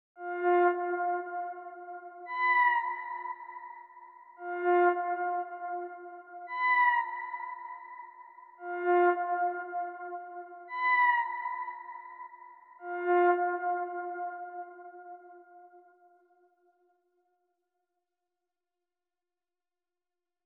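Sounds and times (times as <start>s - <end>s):
114 BPM D sharp minor background flute music: 0.2s - 16.0s.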